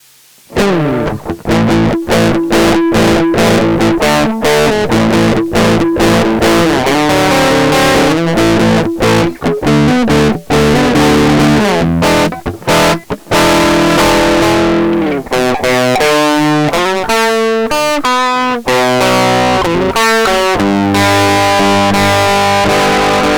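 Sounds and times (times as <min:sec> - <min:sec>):
fuzz distortion: 0:00.0 - 0:23.3.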